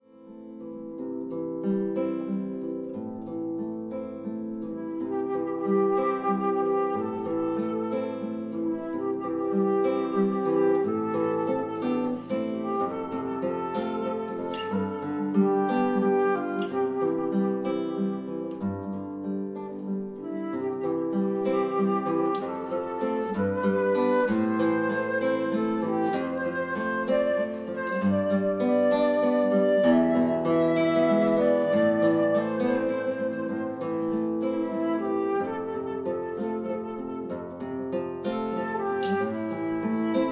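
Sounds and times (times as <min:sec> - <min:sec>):
guitar: 0:00.0 - 0:40.2
flute: 0:00.3 - 0:40.2.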